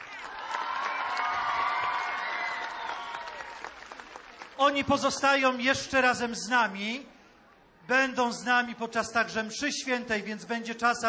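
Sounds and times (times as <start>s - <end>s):
children applauding and cheering at a church gathering: 0.0s - 4.6s
speech: 4.6s - 7.1s, 7.9s - 11.0s.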